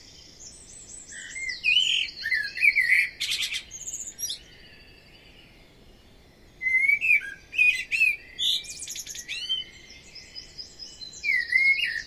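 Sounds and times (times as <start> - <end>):
Common blackbird song: 0.0 - 12.0.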